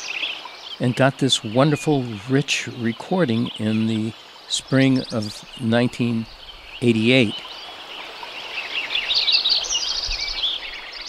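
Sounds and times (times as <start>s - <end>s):
chorus of many bird species singing: 0.0s - 11.0s
speech: 0.8s - 7.5s.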